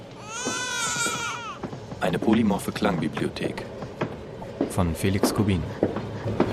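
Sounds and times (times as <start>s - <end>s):
infant crying in a sustained rising wail: 0.2s - 1.6s
speech: 2.0s - 3.7s, 4.7s - 6.4s.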